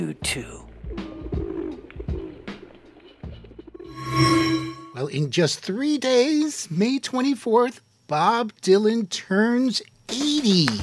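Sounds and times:
speech: 0.0 - 0.6, 5.0 - 10.8
pigeons cooing: 0.9 - 3.2.

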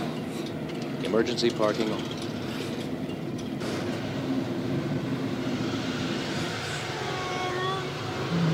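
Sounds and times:
steady rush of road noise: 0.0 - 8.5
speech: 1.1 - 2.2
car engine revving and accelerating onto a freeway: 3.6 - 8.5.

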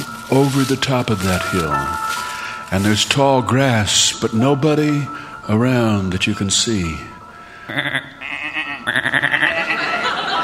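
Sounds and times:
speech: 0.3 - 8.2, 8.8 - 9.4
laughter: 7.7 - 10.4
several sheep bleating: 8.2 - 9.6.

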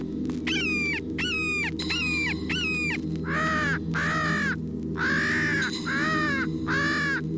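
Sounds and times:
hawk distress cries: 0.5 - 7.2
crows giving harsh distress caws: 3.2 - 7.3.

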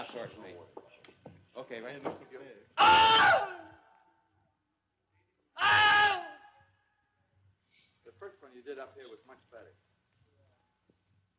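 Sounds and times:
speech: 0.2 - 0.9, 1.6 - 3.7, 8.2 - 9.9
man screaming imitating a man bitten by an alligator: 2.8 - 3.8, 5.6 - 6.6.

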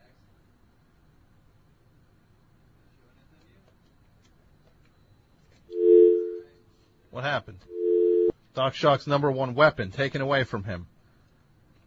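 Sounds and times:
radio call-in show telephone line ringing with incoming calls: 5.8 - 6.5, 7.7 - 8.3
speech: 7.2 - 7.9, 8.6 - 10.9.

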